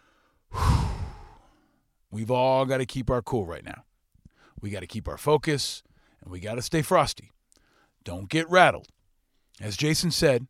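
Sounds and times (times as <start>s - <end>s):
single long deep breath: 0.0s - 1.9s, 4.3s - 4.6s, 5.9s - 6.2s, 7.6s - 8.0s
speech: 2.1s - 3.9s, 4.6s - 7.4s, 8.0s - 9.0s, 9.6s - 10.4s.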